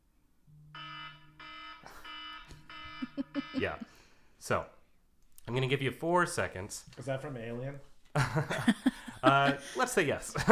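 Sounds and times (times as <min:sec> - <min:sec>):
quiz-game buzzer bursts: 0:00.7 - 0:04.0
laughter: 0:01.9 - 0:04.1, 0:07.6 - 0:10.5
speech: 0:03.1 - 0:04.8, 0:05.5 - 0:10.5.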